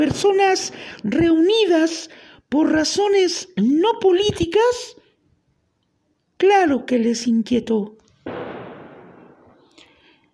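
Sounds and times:
speech: 0.0 - 5.0, 6.4 - 8.0
sharp gunshot outside with long tail: 8.3 - 10.0.

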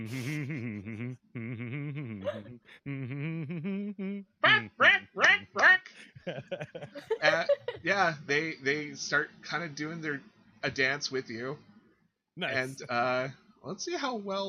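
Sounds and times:
laughter: 0.0 - 2.8, 5.2 - 8.1
speech: 0.0 - 3.6, 7.8 - 11.7, 12.4 - 14.4
duck quacking with nasal bursts and honking calls: 4.4 - 6.0.

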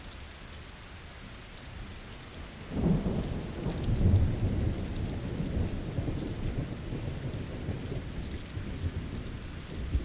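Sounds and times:
steady rain falling outdoors: 0.0 - 10.0.

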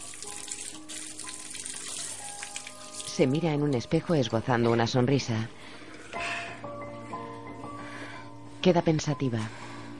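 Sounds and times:
water running from a tap into a restroom sink while washing face: 0.0 - 3.8
speech: 3.2 - 5.6, 8.6 - 9.6.

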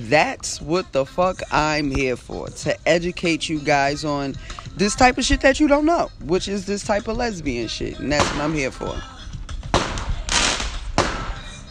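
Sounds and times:
speech: 0.0 - 9.1
continuous noise: 0.0 - 11.7
firework bangs outdoors: 9.7 - 11.7.

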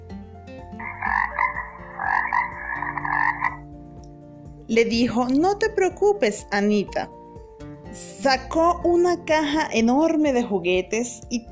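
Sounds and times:
frog croaking: 0.7 - 3.7
speech: 4.7 - 7.2, 8.0 - 11.4.

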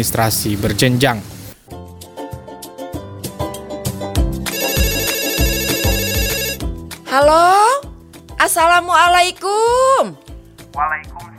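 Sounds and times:
speech: 0.0 - 1.4, 7.2 - 7.6, 8.4 - 10.2, 10.8 - 11.1
phone ringtone melodic electronic tune over a thumping beat: 4.5 - 6.7.

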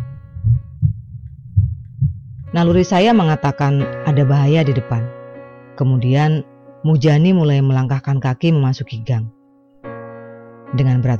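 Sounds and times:
faint low hum: 0.0 - 2.8
deep thudding heartbeat sound effect: 0.0 - 2.9
speech: 2.5 - 5.2, 5.8 - 9.4, 10.7 - 11.1.

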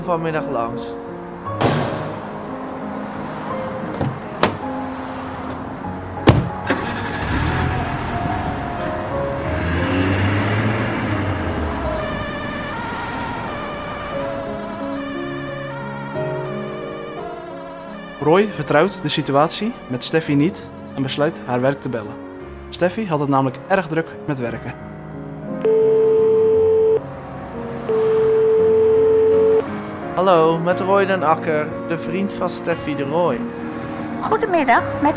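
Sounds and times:
speech: 0.0 - 1.1, 18.2 - 24.9, 30.2 - 33.6, 34.2 - 35.1
ambulance pulling away: 1.4 - 20.9, 25.0 - 31.4
sharp clunks of an ambulance: 1.6 - 2.4, 3.8 - 4.6, 6.2 - 6.8
ambulance engine starting: 6.5 - 8.2
ambulance siren wailing: 11.2 - 20.0, 25.6 - 27.0, 27.9 - 29.6.

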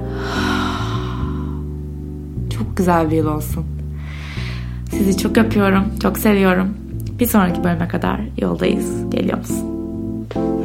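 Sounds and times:
long breathy exhale through the mouth: 0.0 - 1.7
steady low musical hum: 0.0 - 10.6
speech: 2.6 - 3.8, 4.9 - 9.7.

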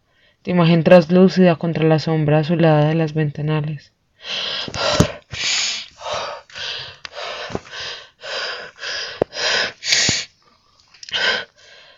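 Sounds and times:
speech: 0.4 - 5.0
person gasping for breath: 4.2 - 10.3, 11.0 - 11.9.

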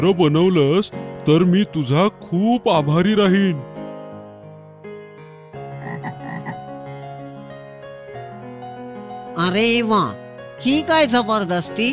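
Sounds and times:
speech: 0.0 - 3.7, 9.5 - 11.9
frog croaking: 5.8 - 6.7.

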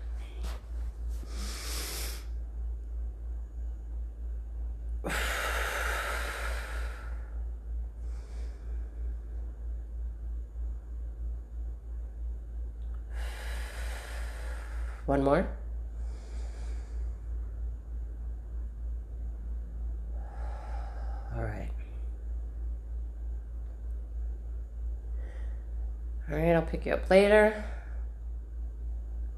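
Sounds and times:
deep breathing: 0.0 - 2.5, 4.9 - 9.9, 12.9 - 18.3, 19.2 - 23.4, 24.9 - 26.2, 27.5 - 29.3
steady low hum: 0.0 - 29.3
speech: 15.1 - 15.6, 26.7 - 27.7.

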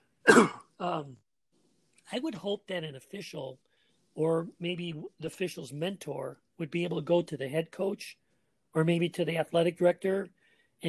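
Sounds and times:
throat clearing cough: 0.3 - 1.1
speech: 0.3 - 1.2, 2.1 - 10.8.

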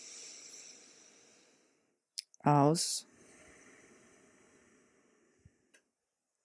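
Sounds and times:
deep inhalation during a breathing exercise: 0.0 - 2.0, 3.0 - 5.9
speech: 2.4 - 3.1.

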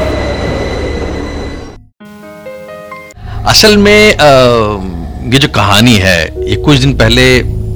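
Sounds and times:
metro train rumbling along the tracks: 0.0 - 1.8
speech: 3.4 - 7.6.

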